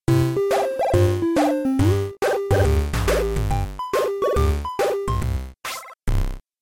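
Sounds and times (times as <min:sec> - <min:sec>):
8-bit jingle: 0:00.1 - 0:05.4.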